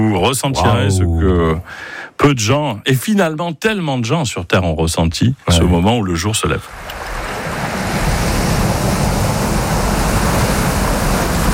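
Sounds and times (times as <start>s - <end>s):
speech: 0.0s - 7.4s
sea waves breaking on a beach: 6.7s - 11.5s.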